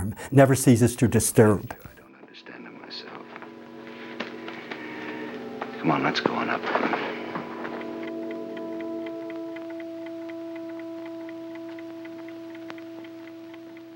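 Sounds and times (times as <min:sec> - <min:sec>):
speech: 0:00.1 - 0:01.9, 0:05.8 - 0:06.8
low humming drone: 0:02.7 - 0:13.9
clock ticking: 0:03.4 - 0:13.9.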